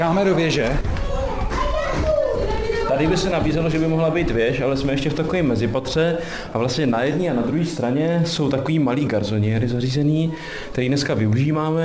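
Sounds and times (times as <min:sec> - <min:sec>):
speech: 0:00.0 - 0:00.9, 0:02.9 - 0:11.8
children's thudding footsteps on a staircase: 0:00.0 - 0:05.5
children chattering and calling: 0:00.0 - 0:07.9.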